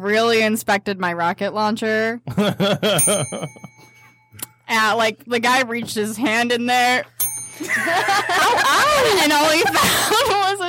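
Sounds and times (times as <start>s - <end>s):
speech: 0.0s - 3.7s, 4.7s - 10.6s
laughter: 2.3s - 3.5s, 7.6s - 10.6s
small hand bell ringing: 3.0s - 4.7s, 7.1s - 9.3s.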